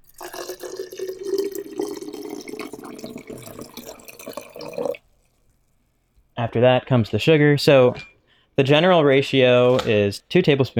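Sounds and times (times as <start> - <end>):
water pouring into a quart-size glass jar holding blueberries: 0.0 - 5.8
speech: 6.4 - 10.7.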